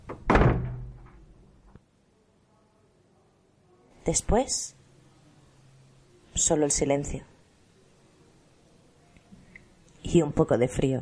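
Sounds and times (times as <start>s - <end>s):
door slamming shut with a heavy bang: 0.0s - 1.3s
speech: 4.1s - 4.8s, 6.4s - 7.3s, 10.1s - 10.9s.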